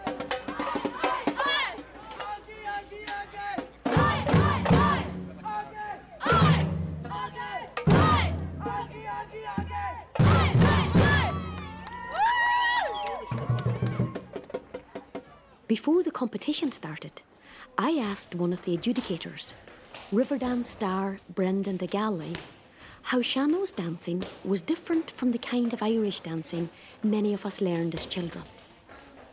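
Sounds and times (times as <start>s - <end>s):
drums banged on city walls: 0.0s - 12.1s, 13.2s - 15.3s
large crowd shouting, cheering and chanting outdoors: 0.0s - 15.6s
speech: 15.9s - 28.6s.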